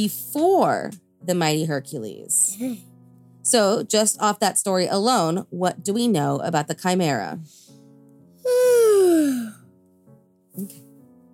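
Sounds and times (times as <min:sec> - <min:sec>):
speech: 0:00.0 - 0:02.9, 0:03.5 - 0:07.7, 0:10.6 - 0:10.8
person yawning: 0:08.4 - 0:09.6.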